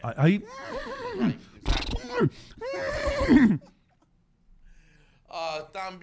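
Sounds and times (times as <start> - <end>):
speech: 0.0 - 3.7, 5.3 - 6.0
person imitating a horse neigh: 0.5 - 3.7.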